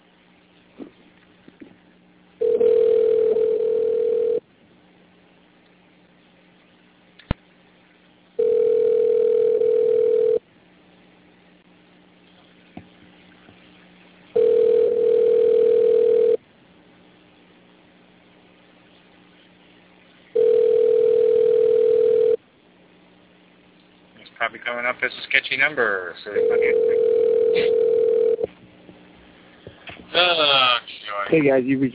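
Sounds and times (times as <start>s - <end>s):
phone ringback tone during outgoing group call: 2.4s - 4.4s, 8.4s - 10.4s, 14.4s - 16.4s, 20.4s - 22.4s, 26.4s - 28.4s
speech: 24.6s - 27.9s, 30.2s - 31.9s.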